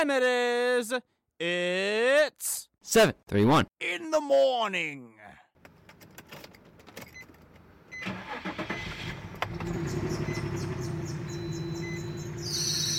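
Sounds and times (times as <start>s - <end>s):
speech: 0.0s - 5.4s
car engine cranking, starting and idling: 7.3s - 12.5s.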